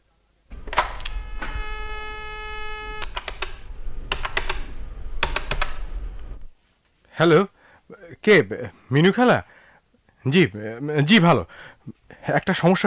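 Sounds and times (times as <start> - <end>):
telephone dial tone multi-tone hum: 0.5 - 6.6
telephone keys pressed for a call: 3.0 - 5.8
speech: 7.2 - 9.6, 10.2 - 12.8.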